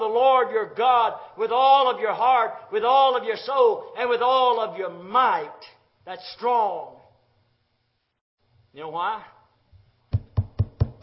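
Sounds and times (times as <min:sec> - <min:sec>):
speech: 0:00.4 - 0:07.0, 0:08.7 - 0:09.4
firm knocks on a wooden door or pulpit: 0:10.1 - 0:11.0.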